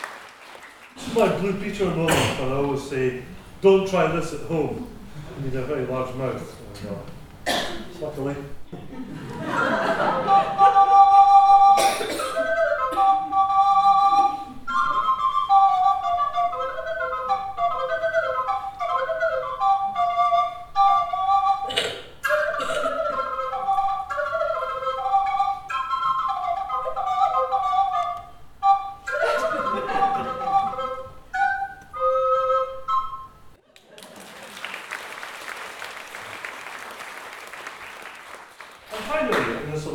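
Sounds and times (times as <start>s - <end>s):
speech: 1.1s - 10.6s
laughter: 8.7s - 10.9s, 29.2s - 30.8s
person whistling a lively melody through the mouth: 10.2s - 33.5s.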